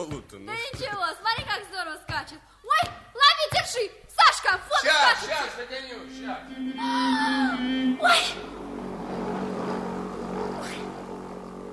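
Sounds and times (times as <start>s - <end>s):
speech: 0.0s - 3.0s, 3.6s - 8.6s
car engine rumbling as it passes by: 6.0s - 11.7s.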